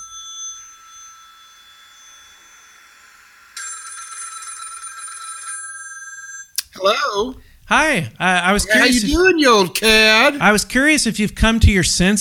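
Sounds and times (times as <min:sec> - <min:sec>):
telephone ring tone through the line during an outgoing call: 0:00.0 - 0:06.6
speech: 0:06.8 - 0:12.1.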